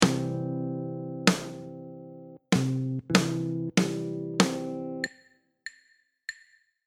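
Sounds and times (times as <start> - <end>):
jazz guitar rhythm: 0.0 - 5.1.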